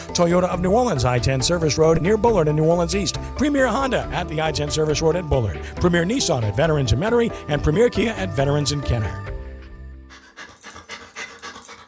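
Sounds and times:
speech: 0:00.2 - 0:09.3
dog panting: 0:10.1 - 0:11.8.

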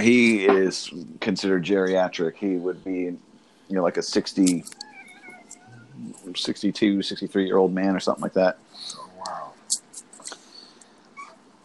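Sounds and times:
speech: 0:00.0 - 0:04.8, 0:06.0 - 0:09.8
cat meowing: 0:04.8 - 0:06.0.

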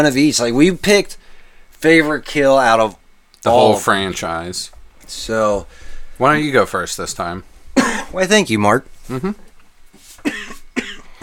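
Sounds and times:
speech: 0:00.0 - 0:09.4
person coughing: 0:07.8 - 0:08.2, 0:10.2 - 0:11.2.

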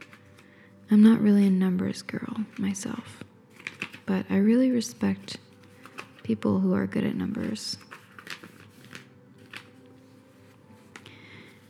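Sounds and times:
piece of paper from inside a box being unfolded: 0:00.0 - 0:00.6, 0:02.3 - 0:06.5, 0:07.2 - 0:11.6
paper crinkling and rustling: 0:00.0 - 0:00.8, 0:02.1 - 0:11.6
speech: 0:00.9 - 0:03.3, 0:04.1 - 0:05.4, 0:06.3 - 0:07.9.

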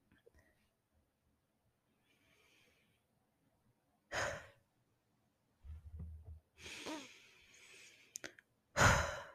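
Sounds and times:
slow soft breathing closing a meditation: 0:01.9 - 0:03.2, 0:06.6 - 0:09.3.

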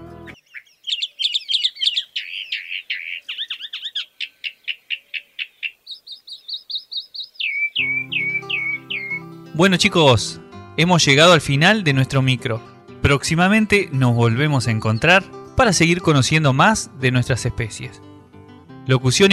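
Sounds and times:
songbird singing: 0:00.0 - 0:10.2, 0:13.3 - 0:16.3
speech: 0:09.6 - 0:18.0, 0:18.9 - 0:19.3.

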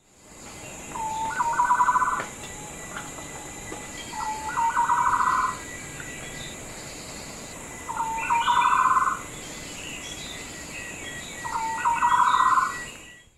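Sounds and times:
rainforest background: 0:00.0 - 0:13.3
soft hiss of insects in rainforest: 0:00.0 - 0:13.3
green broadbill calling with a short rising trill: 0:00.9 - 0:02.2, 0:04.0 - 0:06.3, 0:07.9 - 0:09.2, 0:11.4 - 0:12.9.

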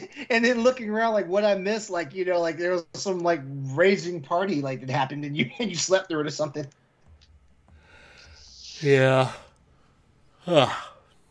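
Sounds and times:
speech: 0:00.1 - 0:06.8, 0:08.8 - 0:09.4, 0:10.4 - 0:10.9
breathy yawn: 0:07.9 - 0:09.5, 0:10.4 - 0:11.0.

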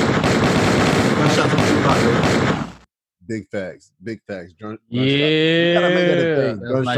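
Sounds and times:
rapid gunshot sound effects: 0:00.0 - 0:02.9
speech: 0:03.3 - 0:06.9.

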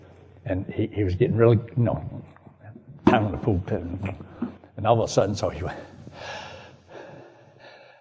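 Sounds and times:
speech: 0:00.5 - 0:02.4, 0:03.1 - 0:06.4
voice imitating heavy tense gasping breath of a scared man: 0:06.0 - 0:07.9.

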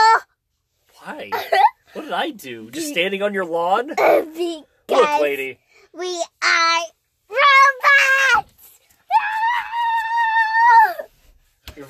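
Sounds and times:
speech: 0:01.2 - 0:08.5
person screaming high-pitched: 0:09.1 - 0:11.1.

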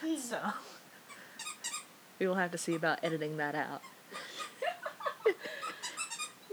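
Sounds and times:
speech: 0:00.0 - 0:00.8, 0:02.2 - 0:04.0
squeaky toy being chewed by a dog: 0:01.1 - 0:01.9, 0:02.6 - 0:04.0, 0:05.6 - 0:06.4.

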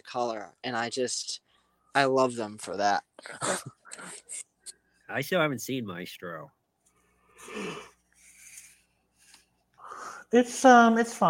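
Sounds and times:
speech: 0:00.1 - 0:04.5, 0:05.1 - 0:06.6, 0:07.4 - 0:07.9, 0:10.3 - 0:11.2
breathy yawn: 0:07.4 - 0:07.9.

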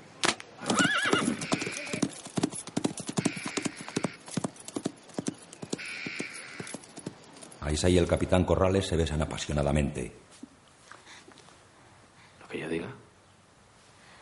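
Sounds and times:
horses whinnying: 0:00.6 - 0:02.2, 0:03.0 - 0:04.8, 0:05.6 - 0:07.0
horses ridden by hunters galloping: 0:00.6 - 0:07.6
speech: 0:07.7 - 0:10.3.

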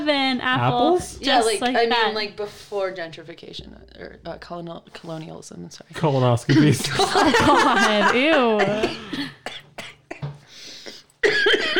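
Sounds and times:
speech: 0:00.0 - 0:09.5
laughter: 0:06.5 - 0:08.9
short sharp coughs: 0:08.6 - 0:11.7.

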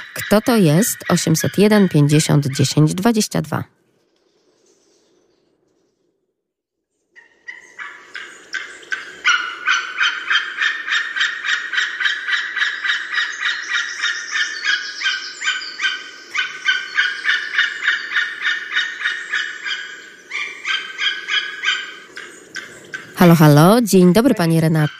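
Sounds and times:
large flock of greylag geese honking: 0:00.0 - 0:02.9, 0:07.2 - 0:24.9
speech: 0:00.3 - 0:03.8, 0:23.3 - 0:24.9.

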